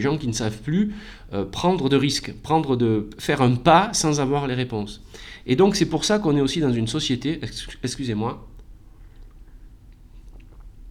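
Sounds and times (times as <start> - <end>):
speech: 0.0 - 8.5
person sipping hot coffee with soft slurps: 9.0 - 10.9.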